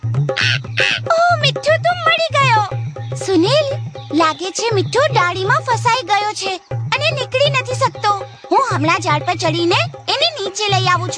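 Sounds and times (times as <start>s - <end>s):
low steady rhythmic thumping: 0.0s - 11.1s
parrot calling from a high neem tree branch: 0.3s - 1.1s
speech: 0.3s - 1.2s, 4.2s - 6.7s, 8.7s - 10.0s, 10.6s - 11.1s.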